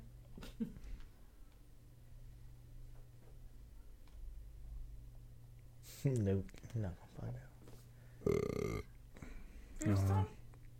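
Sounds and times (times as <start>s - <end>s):
faint noise: 0.0s - 10.7s
speech: 0.6s - 0.8s, 6.0s - 7.5s
person burping into a microphone: 8.2s - 8.9s.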